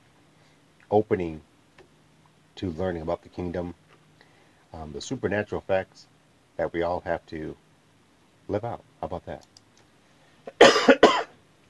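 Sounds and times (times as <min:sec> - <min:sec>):
speech: 0:00.9 - 0:01.5, 0:02.6 - 0:03.8, 0:04.7 - 0:07.6, 0:08.5 - 0:09.5
cough: 0:10.5 - 0:11.4.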